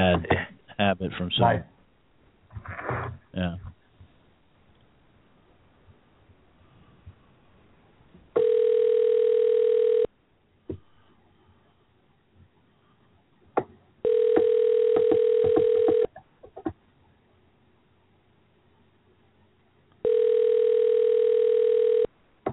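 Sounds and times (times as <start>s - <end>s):
speech: 0.2s - 1.7s, 2.6s - 3.8s
steady electronic telephone tone: 8.4s - 10.1s, 14.0s - 16.1s, 20.0s - 22.1s.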